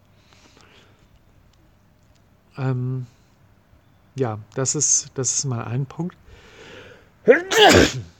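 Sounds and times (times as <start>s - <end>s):
speech: 2.6s - 3.2s, 4.2s - 6.5s, 7.2s - 8.1s
person sneezing: 7.3s - 8.1s.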